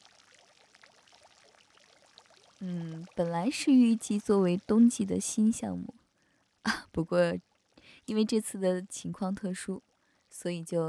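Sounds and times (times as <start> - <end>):
water bubbling and churning in a jacuzzi pool: 0.0 - 6.7, 7.3 - 7.8, 9.8 - 10.4
speech: 2.6 - 6.0, 7.0 - 10.8.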